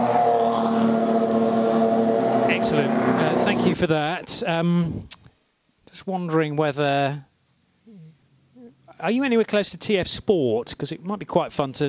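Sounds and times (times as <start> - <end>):
race car engines idling outside pit garages: 0.0 - 3.8
speech: 2.7 - 5.2, 6.0 - 7.3, 9.0 - 11.8.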